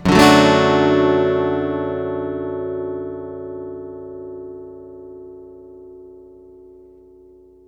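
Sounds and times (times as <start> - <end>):
acoustic guitar one shot in A major: 0.0 - 2.5.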